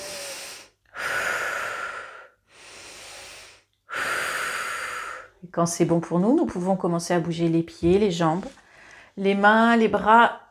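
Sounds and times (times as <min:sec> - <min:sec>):
deep breaths in and out: 0:00.0 - 0:05.4, 0:08.6 - 0:09.2
speech: 0:05.5 - 0:08.6, 0:09.2 - 0:10.4.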